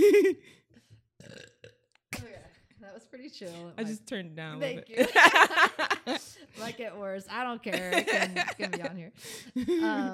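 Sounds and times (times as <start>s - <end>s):
loud croaky belch: 1.2s - 2.5s
speech: 3.1s - 10.1s
laughter: 5.0s - 6.4s, 7.7s - 9.0s, 9.6s - 10.1s.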